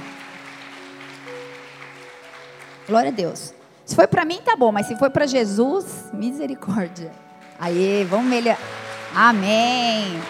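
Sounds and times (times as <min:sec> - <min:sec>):
room full of people clapping: 0:00.0 - 0:03.5, 0:07.5 - 0:10.2
speech: 0:02.9 - 0:10.2.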